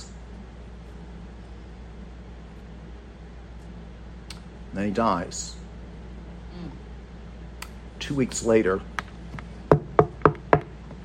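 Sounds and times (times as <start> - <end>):
speech: 4.7 - 5.6, 8.1 - 8.9
sharp knocks on a wooden door: 9.7 - 10.7.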